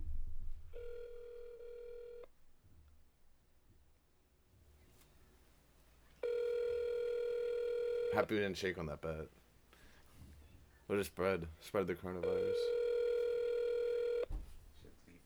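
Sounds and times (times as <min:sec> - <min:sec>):
phone line ringback tone: 0:00.8 - 0:02.3, 0:06.2 - 0:08.3, 0:12.2 - 0:14.3
speech: 0:08.2 - 0:09.4, 0:10.9 - 0:12.8.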